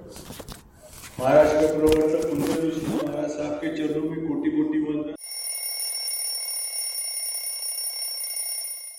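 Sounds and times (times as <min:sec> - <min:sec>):
speech: 0:01.2 - 0:05.1
electronic alarm clock ringing: 0:05.2 - 0:08.9.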